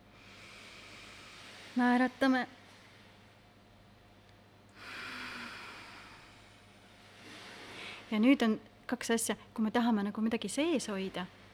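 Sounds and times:
soft airy inhale through the nose during a guided breathing exercise: 0.2s - 1.8s, 4.8s - 8.1s
speech: 1.8s - 2.6s, 8.1s - 11.4s.

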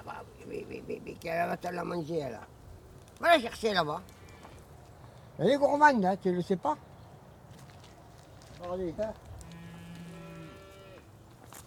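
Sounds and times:
outdoor noise: 0.0s - 11.6s
speech: 0.5s - 2.6s, 3.2s - 4.2s, 5.4s - 6.9s, 8.6s - 9.2s
calves mooing: 9.4s - 11.1s.

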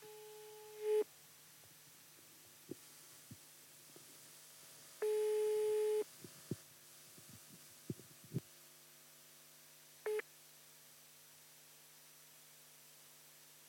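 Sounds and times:
electronic telephone ringback tone of an unanswered call: 5.0s - 6.0s.

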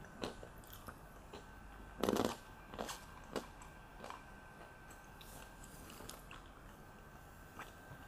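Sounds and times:
almonds being chewed: 0.0s - 6.8s.

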